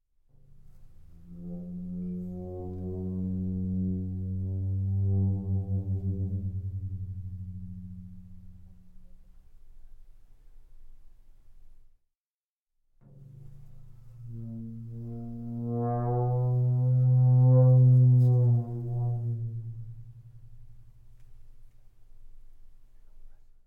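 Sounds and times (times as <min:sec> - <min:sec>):
floor tom drum played with friction mallet, medium vibrate: 0:00.4 - 0:09.8, 0:13.0 - 0:21.6.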